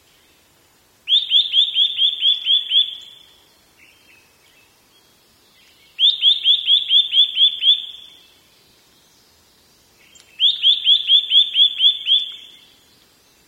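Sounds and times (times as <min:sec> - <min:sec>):
Eurasian nuthatch repeating ringing upslurred whistles: 0:01.1 - 0:03.2, 0:06.0 - 0:08.2, 0:10.4 - 0:12.7.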